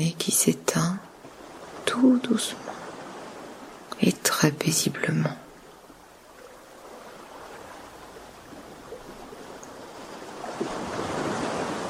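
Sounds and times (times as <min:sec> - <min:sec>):
speech: 0:00.0 - 0:01.1, 0:02.0 - 0:02.7, 0:04.0 - 0:05.4
sea waves washing onto a sandy beach: 0:00.6 - 0:11.8.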